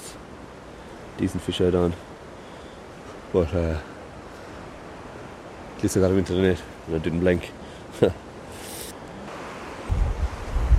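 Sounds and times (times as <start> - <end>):
wind gusts sweeping across a riverbank: 0.0 - 10.7
speech: 1.2 - 2.1, 3.3 - 3.9, 5.8 - 8.2
heavy rumbling wind buffeting against the microphone: 9.8 - 10.7.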